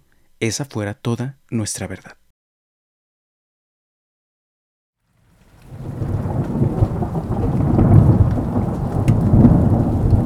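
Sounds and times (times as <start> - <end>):
speech: 0.4 - 2.2
steady rainfall: 5.2 - 10.2
deep continuous thunder rumbling: 5.4 - 10.2.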